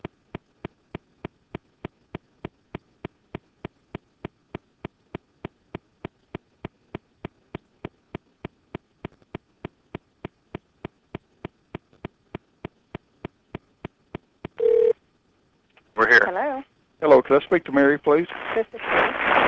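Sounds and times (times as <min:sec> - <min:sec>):
brief steady electronic phone tone: 0:14.6 - 0:14.9
phone line clicking while a call connects: 0:14.6 - 0:15.0
speech: 0:16.1 - 0:19.0.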